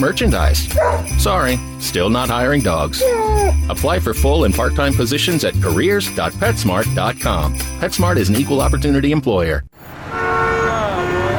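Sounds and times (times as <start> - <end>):
traffic noise on a busy Nashville city street: 0.0 - 1.4, 9.7 - 11.3
speech: 0.0 - 9.9
car horn honking on a busy Nashville city street: 9.9 - 11.3.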